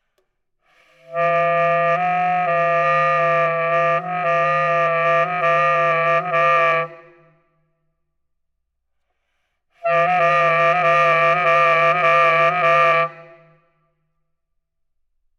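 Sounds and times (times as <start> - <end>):
baritone saxophone multi trills: 1.0 - 7.2, 9.8 - 13.4.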